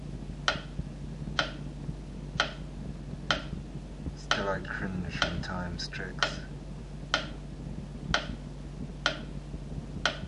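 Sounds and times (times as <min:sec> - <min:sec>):
low hum: 0:00.0 - 0:10.2
clock ticking: 0:01.4 - 0:01.6, 0:02.4 - 0:02.6, 0:03.3 - 0:03.5, 0:04.3 - 0:04.6, 0:05.2 - 0:05.5, 0:06.2 - 0:06.5, 0:07.1 - 0:07.4, 0:08.1 - 0:08.4, 0:09.0 - 0:09.3, 0:10.0 - 0:10.2
speech: 0:04.6 - 0:06.6.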